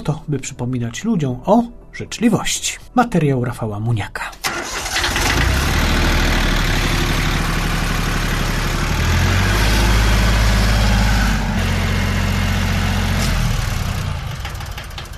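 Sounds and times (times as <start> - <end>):
speech: 0.0 - 4.4
small garden tractor engine running while towing a camping trailer: 4.4 - 15.1.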